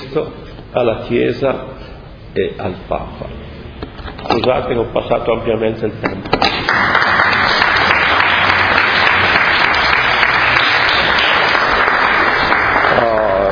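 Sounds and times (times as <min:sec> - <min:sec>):
speech: 0:00.1 - 0:07.1
audience applause: 0:06.6 - 0:13.5.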